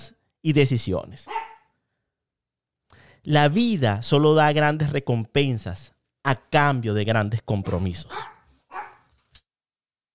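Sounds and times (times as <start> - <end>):
speech: 0.4 - 1.4, 3.2 - 8.9
small dog barking because someone was at the door: 1.3 - 1.7, 8.1 - 9.1.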